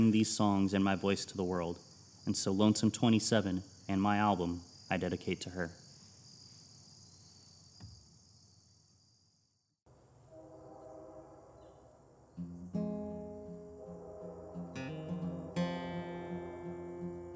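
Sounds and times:
speech: 0.0s - 5.8s
crickets chirring: 0.0s - 17.3s
passenger train horn blast: 10.3s - 12.0s, 12.7s - 17.3s.

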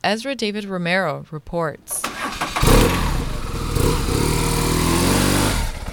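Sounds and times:
speech: 0.0s - 3.0s
police motorcycle engine revving: 2.0s - 5.9s.

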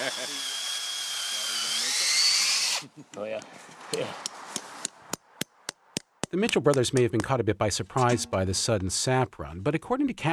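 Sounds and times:
cordless drill boring tap holes into maple trees: 0.0s - 2.9s
speech: 2.9s - 4.6s, 6.4s - 10.3s.

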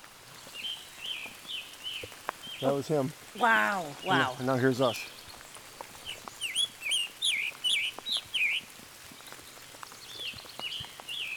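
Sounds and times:
light dripping or rain ticks: 0.4s - 11.3s
Scarlet Tanager singing hoarse burry phrases: 0.6s - 5.4s, 6.0s - 8.6s
speech: 2.6s - 5.2s.

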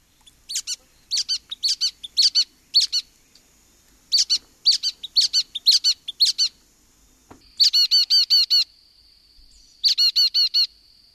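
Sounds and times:
brown-headed nuthatch squeaky chirps: 0.2s - 3.1s, 4.1s - 6.6s, 7.5s - 8.7s, 9.8s - 10.7s.

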